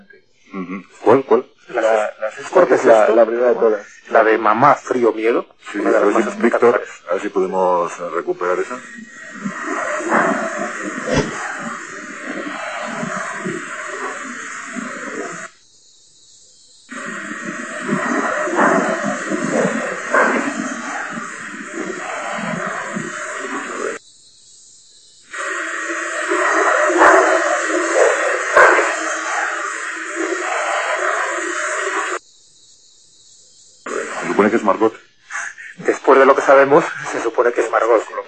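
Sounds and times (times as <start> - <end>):
steady broadband static hiss: 0.0 - 38.2
speech: 0.1 - 10.4.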